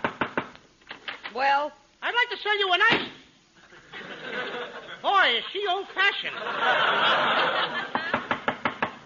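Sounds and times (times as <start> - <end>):
dense hissy noise: 0.0 - 9.0
speech: 1.3 - 3.2, 4.3 - 7.9
laughter: 3.6 - 8.5
salesman knocking on a door: 8.1 - 9.0.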